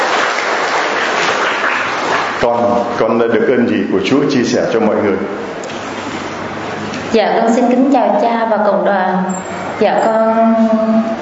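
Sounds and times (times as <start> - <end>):
audience applause: 0.0 - 2.5
speech: 2.4 - 5.7, 7.1 - 11.2.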